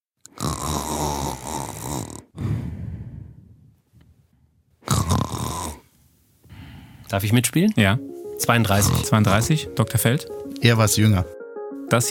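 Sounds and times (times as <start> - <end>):
person snoring loudly: 0.3 - 3.6, 4.9 - 5.9
speech: 7.1 - 12.0.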